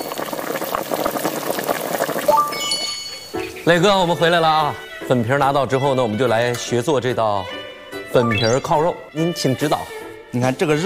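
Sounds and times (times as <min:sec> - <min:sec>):
sauce and water simmering in a pot: 0:00.0 - 0:02.3
short high electronic beeps: 0:02.3 - 0:03.6
speech: 0:03.7 - 0:10.8.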